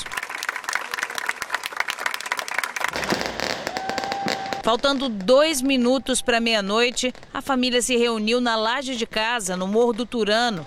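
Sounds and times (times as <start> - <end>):
crowd clapping at a burial: 0.0 - 4.6
speech: 4.7 - 10.6.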